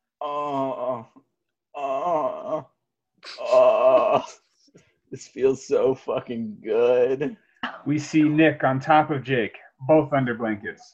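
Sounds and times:
man groaning in a bedroom at night: 0:01.8 - 0:02.8, 0:03.4 - 0:04.4
speech: 0:05.2 - 0:10.9.

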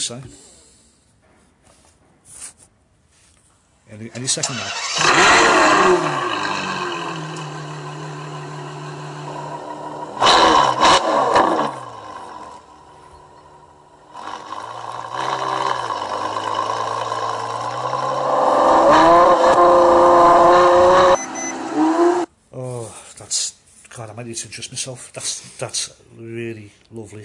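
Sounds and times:
speech: 0:00.0 - 0:00.5, 0:03.9 - 0:06.9, 0:24.3 - 0:27.2
Ferrari F12 engine revving hard: 0:04.4 - 0:22.3.

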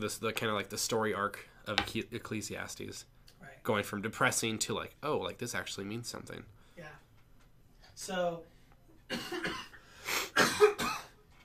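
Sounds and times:
speech: 0:00.0 - 0:07.0, 0:08.0 - 0:08.5, 0:09.1 - 0:09.7, 0:10.4 - 0:11.0
person coughing: 0:09.1 - 0:11.2.

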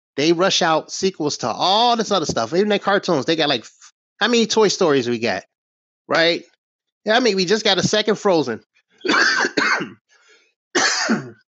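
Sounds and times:
speech: 0:00.2 - 0:05.5, 0:06.1 - 0:10.0, 0:10.8 - 0:11.4
person coughing: 0:09.0 - 0:10.0, 0:10.8 - 0:11.4
throat clearing: 0:09.0 - 0:10.0, 0:10.8 - 0:11.4.

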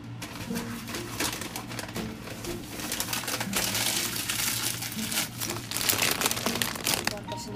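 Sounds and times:
newspaper being crumpled to wrap waste: 0:00.3 - 0:07.4.

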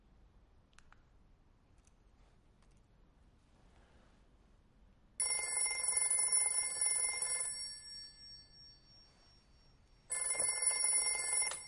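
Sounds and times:
smartphone with a cracked screen ringing: 0:05.2 - 0:11.6.

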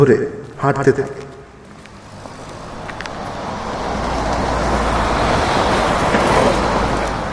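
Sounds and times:
speech: 0:00.0 - 0:01.2
trucks whooshing past on a road: 0:01.6 - 0:07.3.

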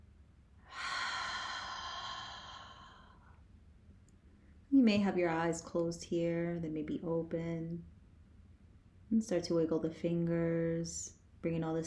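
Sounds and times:
deep breath in through the nose, exhaled through open mouth: 0:00.6 - 0:03.4
speech: 0:04.8 - 0:07.9, 0:09.1 - 0:11.8.

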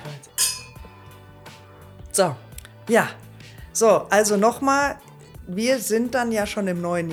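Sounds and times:
two glasses clinking in a toast: 0:00.2 - 0:01.0
speech: 0:02.2 - 0:03.2, 0:03.8 - 0:07.1.

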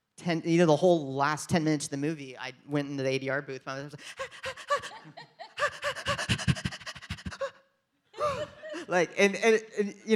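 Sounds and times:
speech: 0:00.2 - 0:05.3, 0:08.3 - 0:10.1
man imitating panting effort breaths: 0:04.0 - 0:07.6
laughter: 0:04.5 - 0:07.5, 0:08.2 - 0:09.2.

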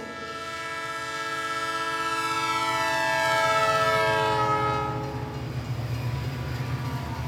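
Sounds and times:
long loud train horn at a station platform: 0:00.0 - 0:05.6
train rumbling and clattering as it pulls away from a station: 0:00.0 - 0:07.2.

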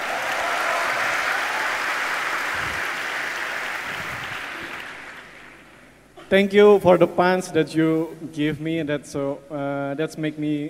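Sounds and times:
crowd applauding: 0:00.0 - 0:05.8
speech: 0:06.3 - 0:10.6.

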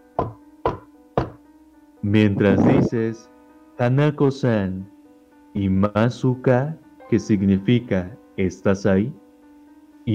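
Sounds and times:
firm knocks on a door: 0:00.2 - 0:01.4
speech: 0:02.0 - 0:04.9, 0:05.5 - 0:09.2.

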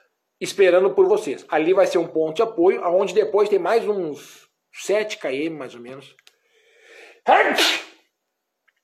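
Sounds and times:
speech: 0:00.4 - 0:06.2, 0:07.2 - 0:07.8
person sneezing: 0:07.0 - 0:08.1.

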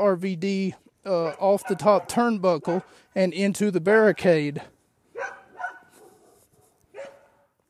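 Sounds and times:
speech: 0:00.0 - 0:05.4
faint outdoor noise: 0:00.0 - 0:07.6
dogs barking: 0:01.2 - 0:03.0, 0:05.1 - 0:07.6.

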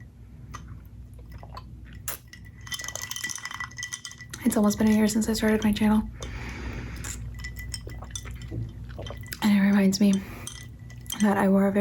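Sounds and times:
light glassy clinks and handling noises: 0:01.9 - 0:05.7, 0:07.0 - 0:09.4
speech: 0:04.4 - 0:06.2, 0:09.8 - 0:10.4, 0:11.2 - 0:11.7.

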